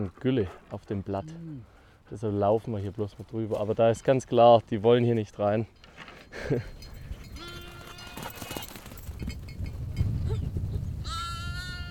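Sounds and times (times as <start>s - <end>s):
speech: 0.0s - 6.9s
rustling and shuffling sheep hooves: 0.0s - 11.8s
bells worn by sheep: 5.6s - 10.3s
sheep bleating in a herd: 7.4s - 8.6s, 11.0s - 11.8s.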